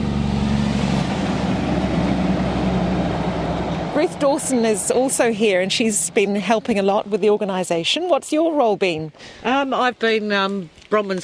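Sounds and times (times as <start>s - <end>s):
loaded logging truck engine drone at a fork in a road: 0.0s - 7.5s
road noise of a loaded logging truck: 0.0s - 11.2s
speech: 4.0s - 11.2s.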